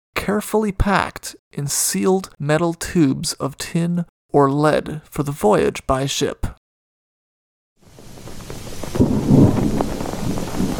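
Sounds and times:
speech: 0.2 - 6.6
steady rain over the Baltic Sea: 7.8 - 10.7
low rumbling thunder over the Baltic Sea: 7.9 - 10.7.

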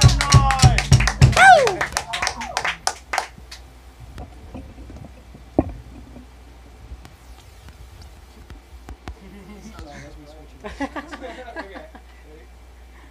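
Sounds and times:
whoops and cheers: 0.0 - 2.8
applause for children: 0.0 - 3.6
laughter: 1.4 - 3.0, 9.2 - 12.3.

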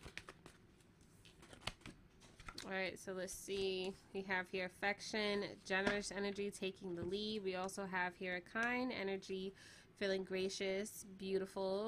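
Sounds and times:
playing cards flicking and rustling during handling: 0.0 - 2.7
speech: 2.6 - 11.8.

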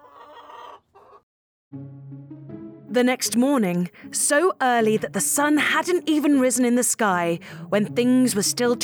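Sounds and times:
chickens clucking in a coop: 0.0 - 1.2
speech: 1.7 - 8.8.

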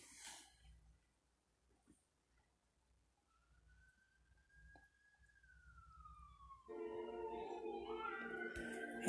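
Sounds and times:
police car siren wailing: 3.3 - 9.0.

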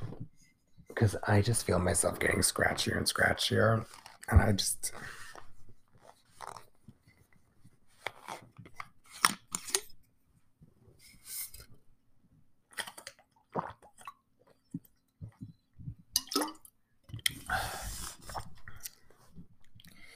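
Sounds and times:
speech: 1.0 - 5.2
person drinking water with wet gulps: 12.7 - 17.5.

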